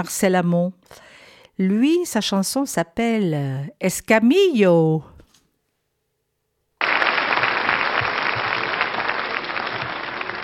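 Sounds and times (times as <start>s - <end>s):
speech: 0.0s - 5.1s
audience applause: 6.8s - 10.4s.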